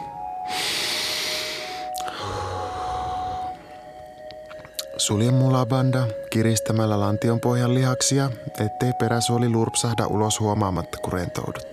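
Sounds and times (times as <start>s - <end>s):
deep breath in and out: 0.4s - 4.0s
speech: 5.0s - 11.7s.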